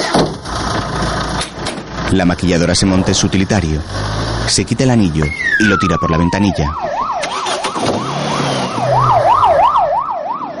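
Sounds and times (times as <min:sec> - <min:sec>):
road traffic noise: 0:00.0 - 0:10.5
speech: 0:02.1 - 0:06.9
wailing ambulance siren as the ambulance drives away: 0:04.5 - 0:10.5.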